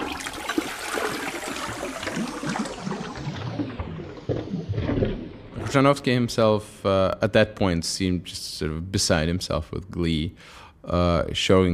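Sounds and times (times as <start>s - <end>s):
toilet in a building flushing through custom-width pipes: 0.0s - 6.4s
speech: 5.7s - 11.7s.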